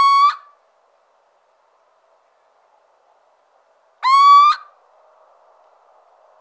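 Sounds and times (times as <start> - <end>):
little owl hooting: 0.0 - 0.6, 4.0 - 4.7.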